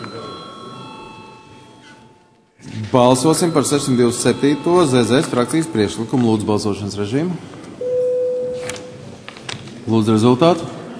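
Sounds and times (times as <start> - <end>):
bell rung to call members to a vote in a parliament chamber: 0.0 - 2.4, 3.0 - 7.0
faint room murmur in a parliament chamber: 0.0 - 10.9
speech: 2.9 - 7.6, 9.9 - 10.8.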